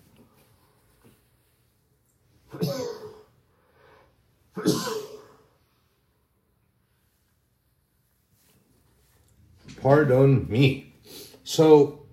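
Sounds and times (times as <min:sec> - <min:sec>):
person sneezing: 0:02.5 - 0:03.4, 0:04.5 - 0:05.5
speech: 0:09.8 - 0:10.9, 0:11.5 - 0:12.0.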